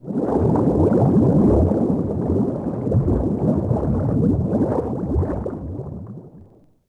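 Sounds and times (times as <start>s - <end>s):
bubbles: 0.0s - 6.8s.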